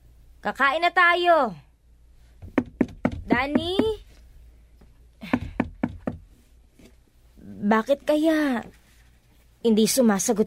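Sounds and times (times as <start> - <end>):
speech: 0.4 - 1.6, 3.4 - 4.0, 7.6 - 8.8, 9.6 - 10.4
firm knocking on a wooden bedroom door: 2.4 - 4.0, 5.2 - 6.3.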